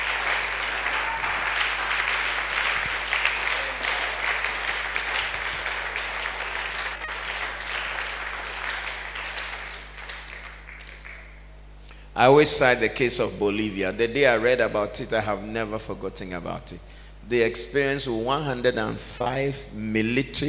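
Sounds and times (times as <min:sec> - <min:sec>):
large audience clapping: 0:00.0 - 0:11.5
speech: 0:12.2 - 0:20.4.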